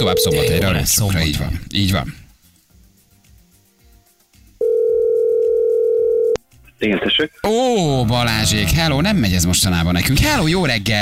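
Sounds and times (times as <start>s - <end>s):
speech: 0.0s - 2.2s, 6.8s - 11.0s
telephone dial tone of an outgoing call: 4.6s - 6.4s.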